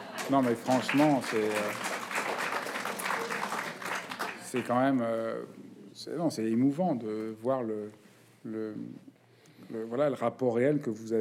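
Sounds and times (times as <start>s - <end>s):
audience applauding a bookseller: 0.0s - 5.0s
speech: 0.3s - 1.9s, 4.5s - 11.1s.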